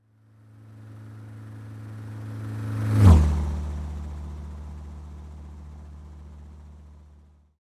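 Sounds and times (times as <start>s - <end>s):
car passing by from right to left: 0.4s - 6.4s.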